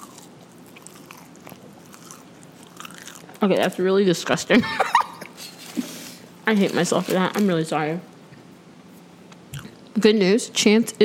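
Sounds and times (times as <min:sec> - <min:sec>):
biting and chewing a chicken tender sub on wheat bread: 0:00.0 - 0:03.8
speech: 0:03.4 - 0:04.9, 0:06.5 - 0:08.1, 0:10.0 - 0:11.0.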